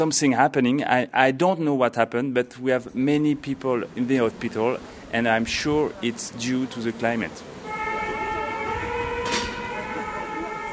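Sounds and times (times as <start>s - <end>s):
speech: 0.0s - 7.6s
noisy street background: 0.0s - 10.7s
fire engine siren: 7.6s - 10.7s.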